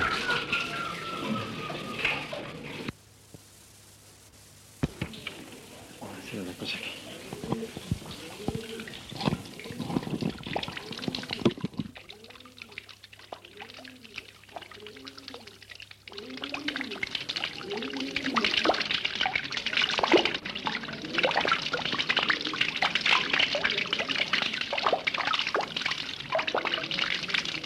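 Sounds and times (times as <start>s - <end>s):
faint voices: 0.0s - 2.9s, 4.9s - 11.6s
water flowing and splashing in Granada: 0.0s - 3.0s, 4.8s - 27.6s.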